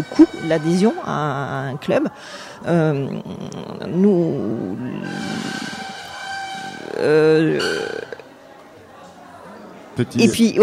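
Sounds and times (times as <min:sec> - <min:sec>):
speech: 0:00.0 - 0:05.6, 0:07.0 - 0:08.0, 0:10.0 - 0:10.6
tables dragged across a hard floor in the next room: 0:05.0 - 0:08.2.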